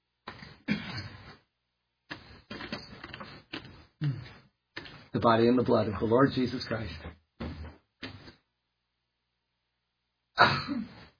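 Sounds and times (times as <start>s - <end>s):
person sneezing during a communion service: 0.6s - 1.4s, 10.4s - 11.1s
speech: 5.2s - 7.2s.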